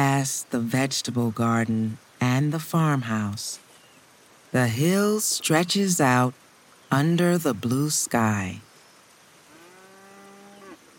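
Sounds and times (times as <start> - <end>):
speech: 0.0 - 3.6, 4.5 - 8.7
cow mooing: 9.5 - 10.8.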